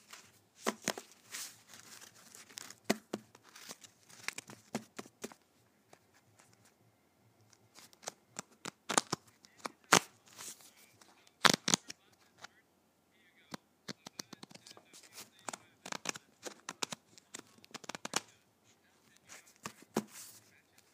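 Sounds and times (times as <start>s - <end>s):
playing cards snapping: 0.1s - 5.4s, 7.7s - 10.1s, 11.4s - 12.0s, 13.9s - 18.3s.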